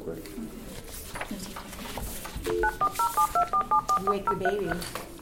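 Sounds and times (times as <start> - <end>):
mobile phone keypad tones: 2.5 - 5.0.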